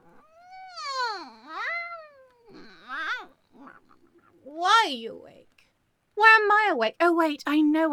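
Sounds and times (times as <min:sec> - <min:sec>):
cat meowing: 0:00.0 - 0:04.0
speech: 0:04.9 - 0:05.4, 0:06.2 - 0:07.9.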